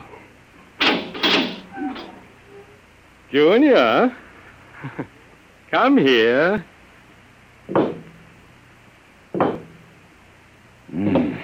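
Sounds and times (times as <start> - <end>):
door being opened with rattling and scraping: 0.8 - 2.3
door creaking: 0.8 - 2.7
speech: 3.3 - 4.2, 4.8 - 6.7.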